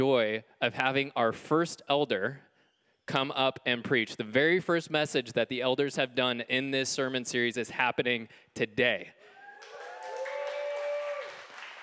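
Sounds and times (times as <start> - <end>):
speech: 0.0 - 2.5, 3.1 - 9.2
audience applauding: 9.4 - 11.8.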